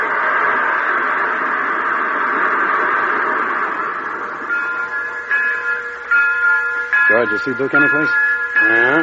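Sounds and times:
train locomotive rumbling: 0.0s - 9.0s
speech: 7.2s - 9.0s.

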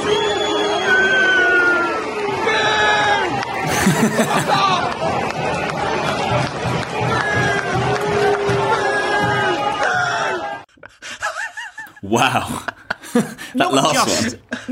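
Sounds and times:
football fans booing in a large stadium: 0.0s - 10.7s
laughter: 3.5s - 5.3s, 10.7s - 14.7s
speech: 3.9s - 5.2s, 12.1s - 14.7s.

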